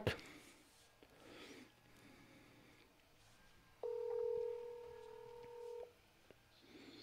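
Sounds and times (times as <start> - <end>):
electronic two-pitch telephone tone while dialing: 3.8 - 5.9.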